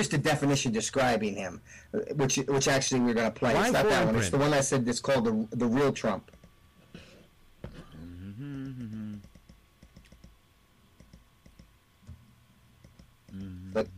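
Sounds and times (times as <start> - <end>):
speech: 0.0 - 6.4, 13.7 - 13.9
clicking on a computer: 6.3 - 6.6, 8.5 - 10.4, 11.0 - 12.2, 12.8 - 13.5
voiced hums and murmurs: 7.6 - 9.5, 13.2 - 13.9.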